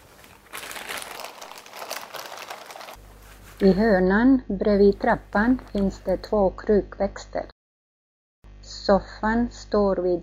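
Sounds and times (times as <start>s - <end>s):
plastic bag being opened and crinkled: 0.0s - 3.7s
speech: 3.6s - 7.5s, 8.8s - 10.2s.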